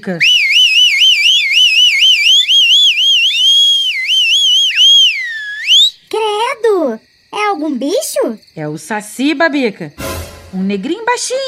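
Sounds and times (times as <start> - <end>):
speech: 0.0 - 0.3, 7.8 - 11.4
shrill piercing whistle warbling and trilling: 0.2 - 6.1.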